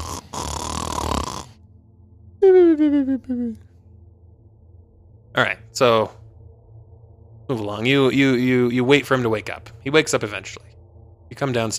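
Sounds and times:
person imitating loud snoring of a man asleep: 0:00.0 - 0:01.6
short throaty falling grunts: 0:00.0 - 0:01.6
speech: 0:02.8 - 0:03.6, 0:05.4 - 0:06.2, 0:07.5 - 0:11.7.

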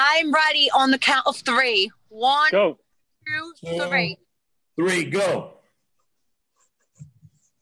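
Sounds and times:
speech: 0:00.2 - 0:04.2, 0:04.8 - 0:05.6
pens scratching across paper: 0:06.0 - 0:07.5.

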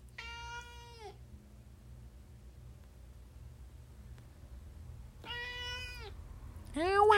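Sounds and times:
low steady hum: 0:00.0 - 0:07.1
cat meowing: 0:00.1 - 0:01.2, 0:05.2 - 0:06.2.

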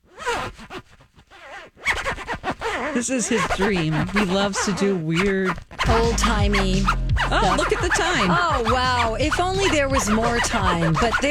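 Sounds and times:
jacket zipper being pulled up and down: 0:00.0 - 0:11.2
speech: 0:03.0 - 0:11.2.

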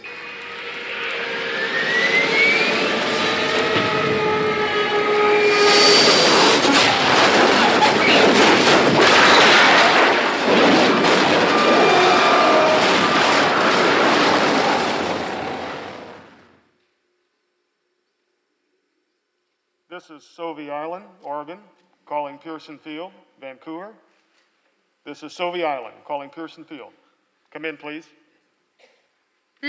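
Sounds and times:
bomber plane diving with straining failing engines: 0:00.0 - 0:16.5
speech: 0:22.6 - 0:24.1, 0:25.0 - 0:28.2.

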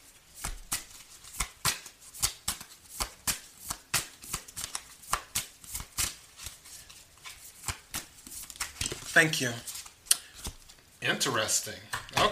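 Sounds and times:
faint hiss: 0:00.0 - 0:12.2
playing cards being handled and flicked: 0:00.4 - 0:09.1
speech: 0:09.2 - 0:09.7, 0:11.0 - 0:12.2.

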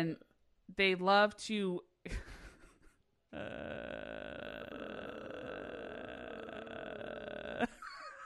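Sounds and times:
speech: 0:00.0 - 0:02.4, 0:03.3 - 0:04.2
voice imitating a cartoon character's long flat groan: 0:03.3 - 0:08.2.

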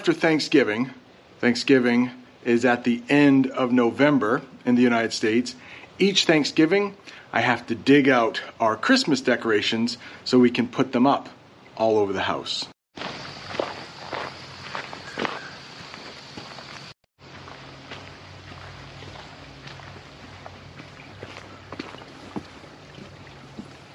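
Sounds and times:
speech: 0:00.0 - 0:13.1
footsteps of someone walking in the woods crunching on the ground: 0:13.0 - 0:23.9.

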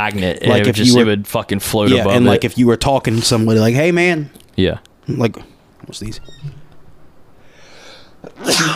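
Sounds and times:
speech: 0:00.0 - 0:06.6, 0:08.2 - 0:08.7
sneeze: 0:08.3 - 0:08.7.

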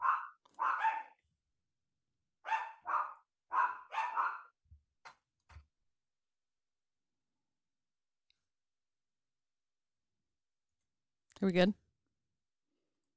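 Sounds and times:
dogs barking: 0:00.0 - 0:01.2, 0:02.5 - 0:04.6
speech: 0:11.4 - 0:11.8.

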